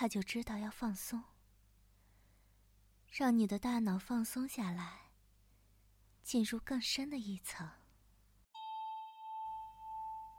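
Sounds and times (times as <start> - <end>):
speech: 0.0 - 1.3, 3.1 - 5.0, 6.2 - 7.8
bell chime used as a relaxation cue: 8.6 - 10.3.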